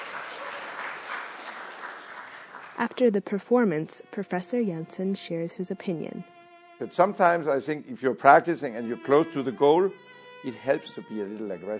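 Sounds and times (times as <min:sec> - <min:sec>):
small studio class audience applauding after a bowed string performance: 0:00.0 - 0:03.4
speech: 0:02.8 - 0:11.7.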